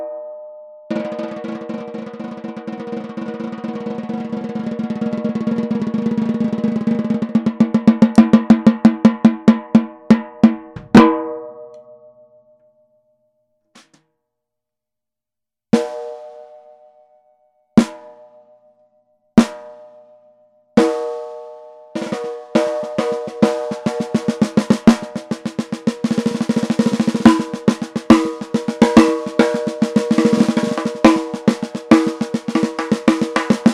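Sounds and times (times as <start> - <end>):
mahogany 14x6.5 snare drum: 0.9 - 11.2, 17.8 - 18.1, 19.4 - 19.8, 22.0 - 33.7.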